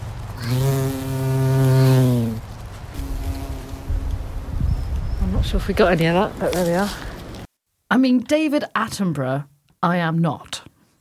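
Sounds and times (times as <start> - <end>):
outdoor rustle: 0.0 - 9.8
speech: 0.4 - 0.9, 5.5 - 7.1, 7.9 - 10.6
bee buzzing: 0.4 - 5.2.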